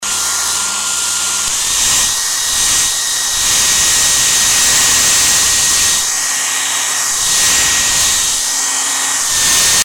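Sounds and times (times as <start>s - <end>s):
hair dryer: 0.0s - 9.8s.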